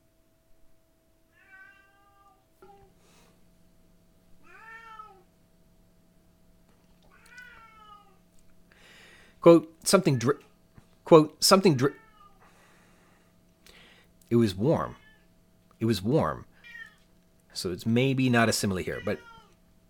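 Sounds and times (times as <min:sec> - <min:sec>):
low steady hum: 0:00.0 - 0:19.8
cat meowing: 0:01.3 - 0:02.9, 0:04.4 - 0:05.3, 0:07.1 - 0:08.2, 0:14.9 - 0:15.3, 0:16.6 - 0:17.1, 0:18.9 - 0:19.6
speech: 0:09.4 - 0:10.5, 0:11.1 - 0:12.0, 0:14.3 - 0:15.0, 0:15.8 - 0:16.5, 0:17.6 - 0:19.3.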